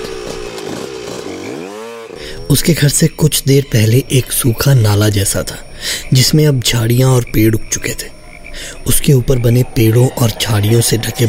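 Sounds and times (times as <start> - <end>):
small scooter engine starting and revving as it pulls away: 0.0 - 2.4
speech: 2.5 - 11.2.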